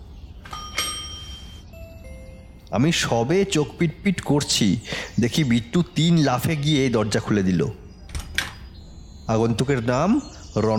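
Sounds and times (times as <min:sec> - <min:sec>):
doorbell ringing with a chiming tone: 0:00.5 - 0:03.2
speech: 0:02.7 - 0:07.8, 0:09.3 - 0:10.7.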